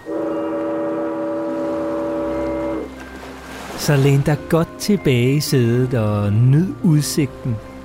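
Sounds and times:
ferry's horn blast departing Aarhus across Aarhus Bay: 0.0s - 4.8s
speech: 3.8s - 7.7s.

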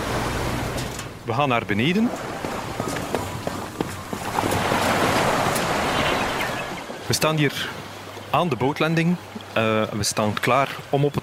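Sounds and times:
sea water churning below an offshore energy platform: 0.0s - 11.2s
speech: 1.3s - 2.3s, 7.1s - 11.2s
footstep-like knocks: 2.1s - 5.7s.

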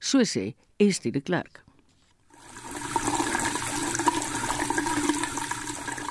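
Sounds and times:
speech: 0.1s - 1.7s
water gushing from a tap: 2.4s - 6.0s.

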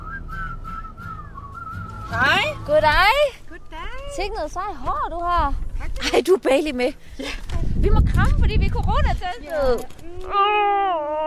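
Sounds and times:
person whistling a wavering sliding tune: 0.0s - 2.6s
speech: 2.1s - 3.4s, 4.1s - 11.2s.

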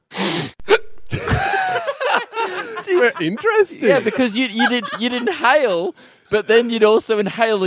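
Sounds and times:
person sniffing: 0.0s - 0.6s
laughter: 0.7s - 7.3s
speech: 3.0s - 7.6s.

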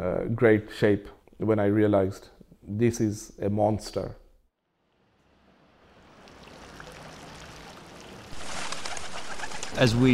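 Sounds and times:
speech: 0.0s - 4.2s, 9.8s - 10.1s
fountain water splashing in a plaza: 5.8s - 8.4s
pigeon wings flapping as the birds take off: 6.4s - 10.1s
pigeons cooing: 6.7s - 10.1s.

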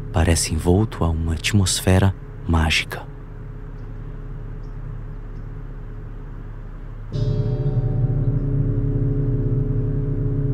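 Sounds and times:
speech: 0.2s - 3.1s
low rumble: 6.8s - 10.5s
golden gong at a monastery ringing and reverberating: 7.1s - 10.5s.

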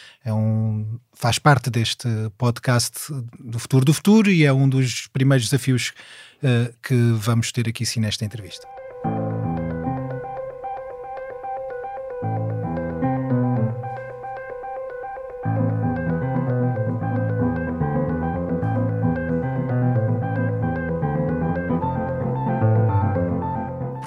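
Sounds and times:
speech: 0.2s - 9.2s
acoustic piano duo with ringing chords: 8.5s - 24.0s
sustained electronic drones and hums: 8.7s - 23.9s.

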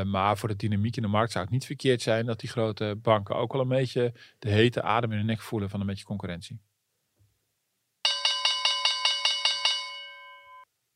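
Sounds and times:
speech: 0.0s - 6.7s
bright electric bell ringing in a trill: 8.0s - 10.7s.

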